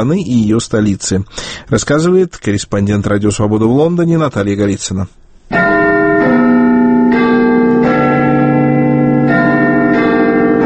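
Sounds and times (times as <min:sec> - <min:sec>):
speech: 0:00.0 - 0:05.8
large tower clock bell chiming: 0:05.5 - 0:10.6.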